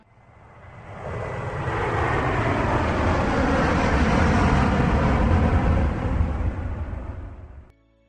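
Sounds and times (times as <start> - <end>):
jetliner engines roaring to full power for takeoff: 0.0 - 7.7.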